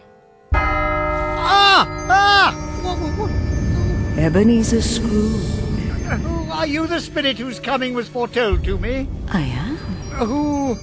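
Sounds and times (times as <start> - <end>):
clock chime striking one: 0.0 - 7.7
speech: 4.2 - 10.8.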